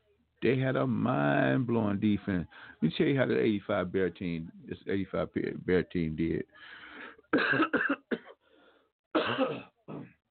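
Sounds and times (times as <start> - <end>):
speech: 0.4 - 8.0, 9.2 - 10.1
wet coughing bringing up phlegm from cat allergies: 7.3 - 8.4, 9.2 - 10.2
throat clearing from cat allergies: 9.2 - 10.2.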